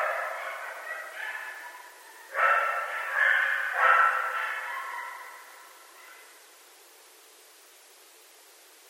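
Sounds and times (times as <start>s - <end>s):
several coyotes yipping: 0.0s - 6.5s.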